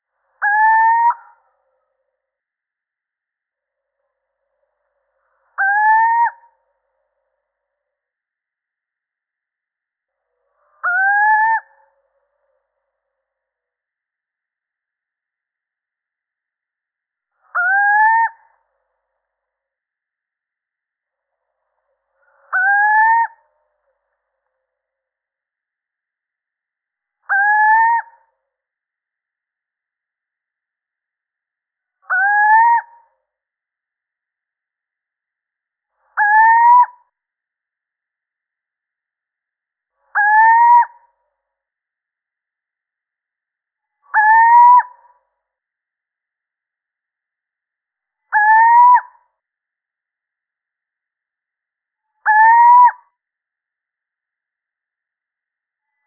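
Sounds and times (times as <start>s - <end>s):
male little owl calling: 0.4s - 1.4s, 5.6s - 6.5s, 10.7s - 11.8s, 17.5s - 18.5s, 22.4s - 23.4s, 27.3s - 28.2s, 32.1s - 33.0s, 36.2s - 37.0s, 40.1s - 41.0s, 44.1s - 45.0s, 48.3s - 49.2s, 52.2s - 53.1s.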